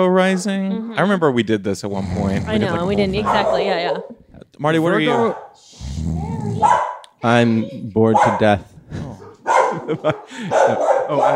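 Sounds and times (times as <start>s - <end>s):
speech: 0.0s - 9.2s, 9.8s - 11.3s
laughter: 2.0s - 4.2s, 8.8s - 11.3s
dog barking: 3.2s - 4.2s, 5.0s - 5.6s, 6.6s - 7.0s, 8.1s - 8.6s, 9.2s - 11.3s.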